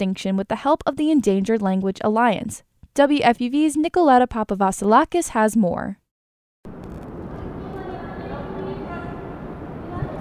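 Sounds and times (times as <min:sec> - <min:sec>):
speech: 0:00.0 - 0:06.0
New York City traffic rumble under the Dumbo Archway in Brooklyn: 0:06.7 - 0:10.2
M train passing above the archway: 0:07.1 - 0:10.2.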